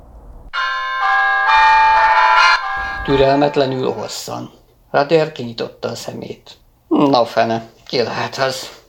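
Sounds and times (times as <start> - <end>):
shrill doorbell ringing: 0.6 - 4.1
speech: 3.1 - 8.8.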